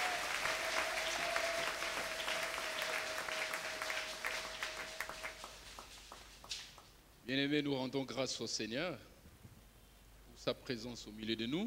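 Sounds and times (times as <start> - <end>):
church congregation clapping in praise during worship: 0.0 - 7.0
speech: 7.3 - 9.1, 10.4 - 11.6.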